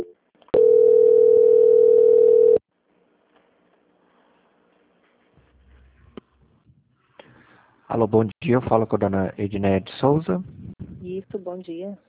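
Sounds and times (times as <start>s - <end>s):
telephone line tone during a call transfer: 0.0s - 2.6s
speech: 8.0s - 12.0s.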